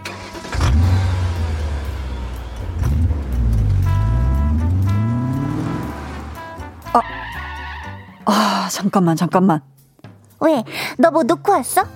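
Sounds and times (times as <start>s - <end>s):
car engine starting: 0.0s - 7.9s
speech: 6.9s - 7.1s, 8.3s - 9.7s, 10.4s - 11.9s.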